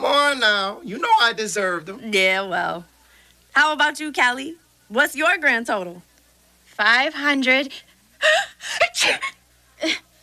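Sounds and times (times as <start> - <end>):
speech: 0.4 - 2.9, 3.6 - 6.1, 6.8 - 10.1
person sneezing: 8.7 - 9.4.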